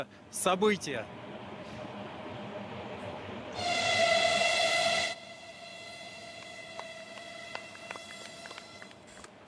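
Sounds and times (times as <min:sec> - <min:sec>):
speech: 0:00.0 - 0:01.2
train horn blast approaching the second Baikal tunnel portal in Russia: 0:03.5 - 0:09.2.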